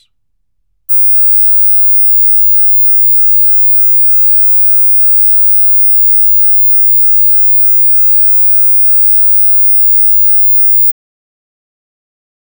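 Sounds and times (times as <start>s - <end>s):
19 and 20 kHz test tones at 0 dBFS: 0.9s - 10.9s.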